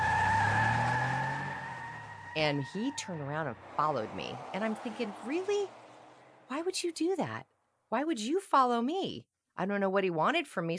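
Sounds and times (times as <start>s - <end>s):
heavy truck engine roaring, accelerating hard from a stop: 0.0s - 6.5s
speech: 2.4s - 5.8s, 6.5s - 10.7s.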